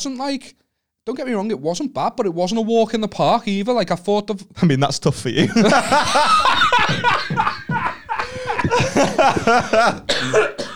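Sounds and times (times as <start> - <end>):
speech: 0.0 - 7.4, 8.7 - 10.6
breathy laughter: 5.4 - 10.7
person coughing: 5.5 - 10.7.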